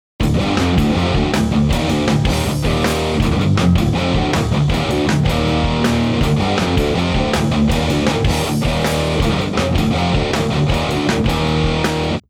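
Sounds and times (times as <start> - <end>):
high gain distortion: 0.2 - 12.2.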